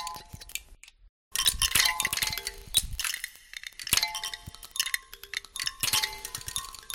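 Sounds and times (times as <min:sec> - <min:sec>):
ice clinking inside a glacier ice cave: 0:01.4 - 0:06.9.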